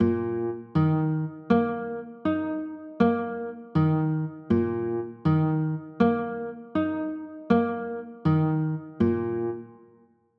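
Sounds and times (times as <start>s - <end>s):
chords in E flat major: 0.0s - 9.8s.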